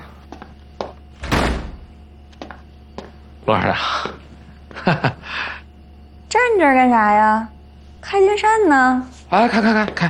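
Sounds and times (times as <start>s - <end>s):
door closing with a dull heavy thud: 1.2s - 1.9s
speech: 3.4s - 4.2s, 4.8s - 5.6s, 6.4s - 10.0s.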